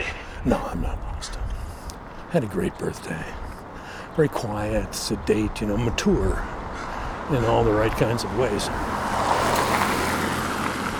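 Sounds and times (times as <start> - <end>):
speech: 0.4 - 1.4, 2.3 - 3.5, 4.2 - 6.6, 7.3 - 8.9
car on studded tires passing by: 6.6 - 10.9.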